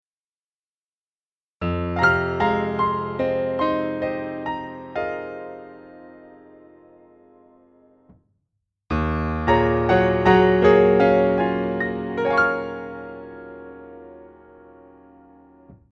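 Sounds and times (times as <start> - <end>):
dry acoustic piano: 1.6 - 7.7, 8.9 - 15.9.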